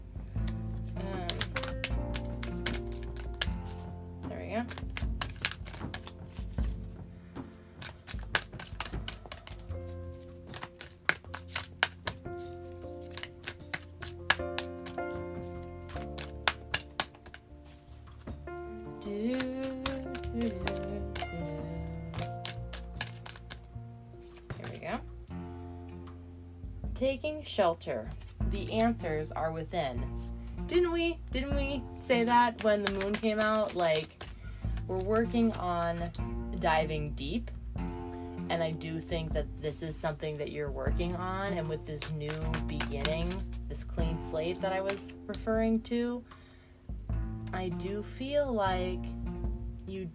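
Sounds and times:
soft music: 0.0s - 50.1s
deck of oracle cards being shuffled: 0.4s - 25.0s, 28.0s - 29.2s, 31.4s - 36.2s, 40.9s - 45.4s
speech: 27.0s - 34.1s, 34.9s - 37.6s, 38.6s - 46.4s, 47.5s - 49.2s, 49.9s - 50.1s.

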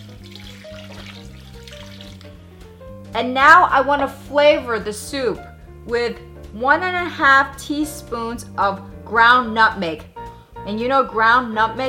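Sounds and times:
two cups of water pouring into a soup pot: 0.0s - 2.4s
soft tonal music: 0.0s - 11.8s
speech: 3.2s - 11.8s.

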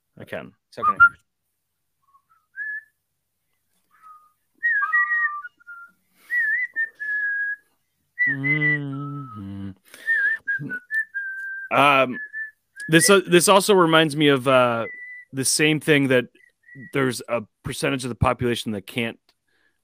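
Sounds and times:
speech: 0.2s - 1.3s, 11.7s - 12.3s, 12.9s - 19.2s
person whistling a short tune: 2.0s - 2.9s, 3.9s - 13.3s, 14.8s - 15.4s.

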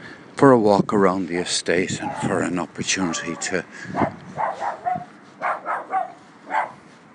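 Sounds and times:
speech: 0.4s - 4.2s
dog barking outdoors on an estate at night: 2.0s - 2.4s, 3.1s - 6.8s.

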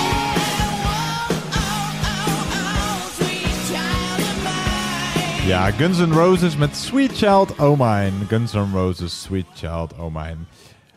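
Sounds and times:
1987 rock song playing: 0.0s - 9.4s
speech: 5.5s - 10.7s.

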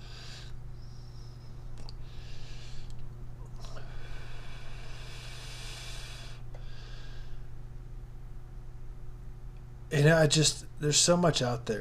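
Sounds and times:
long hissing exhale: 0.0s - 3.0s, 3.6s - 7.4s
airy breaths inhaling and exhaling from a vape: 0.0s - 7.6s
steady low hum: 0.0s - 11.7s
speech: 9.9s - 11.7s.

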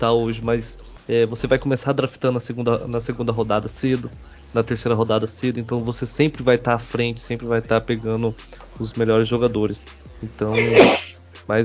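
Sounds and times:
speech: 0.0s - 11.6s
person sneezing: 10.5s - 11.2s.

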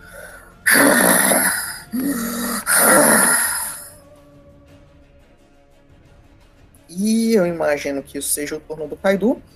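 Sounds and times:
voice imitating heavy labored breathing of a large gnoll: 0.0s - 4.0s
speech: 7.5s - 9.5s.

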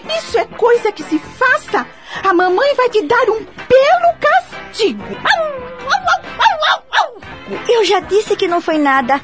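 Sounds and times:
speech: 0.1s - 1.2s, 2.5s - 5.6s, 7.7s - 9.2s
small dog barking: 5.2s - 7.2s.

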